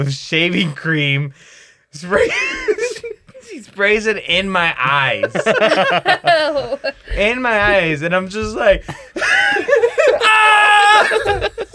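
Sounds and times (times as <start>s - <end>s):
speech: 0.0s - 11.7s
laughter: 2.0s - 11.7s
loud scream into the microphone: 10.0s - 11.4s.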